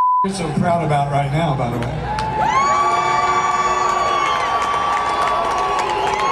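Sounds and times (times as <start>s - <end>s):
speech: 0.2s - 2.6s
large crowd booing: 1.9s - 6.2s.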